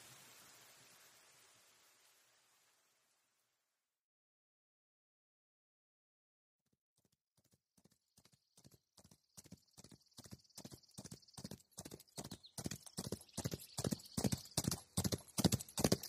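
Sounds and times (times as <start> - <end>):
rapid rhythmic hoofbeats of galloping horses: 7.0 - 16.0.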